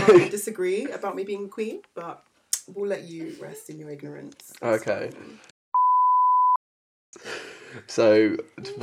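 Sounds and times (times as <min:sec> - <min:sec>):
speech: 0:00.0 - 0:05.5, 0:07.1 - 0:08.8
single steady electronic beep: 0:05.8 - 0:06.6.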